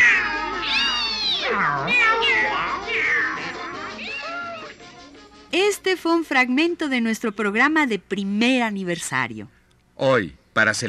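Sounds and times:
cat meowing in long wavering yowls: 0.0s - 4.8s
speech: 5.9s - 10.8s.

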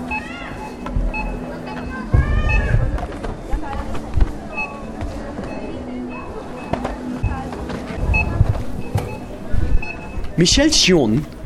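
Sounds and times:
items clattering: 0.0s - 10.4s
scanner beeps at supermarket cash registers: 0.0s - 11.2s
shoppers' murmuring voices: 0.0s - 11.4s
speech: 10.4s - 11.4s.

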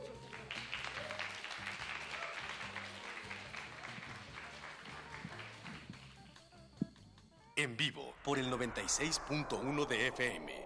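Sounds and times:
large audience applause in a reverberant concert hall: 0.0s - 6.1s
speech: 7.6s - 10.6s.

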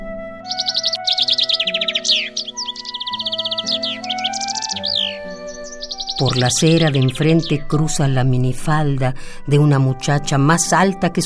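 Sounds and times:
steady low musical drone: 0.0s - 11.2s
birds chirping and singing in rapid trilling bursts: 0.4s - 8.9s
speech: 0.5s - 0.8s, 6.2s - 11.2s.

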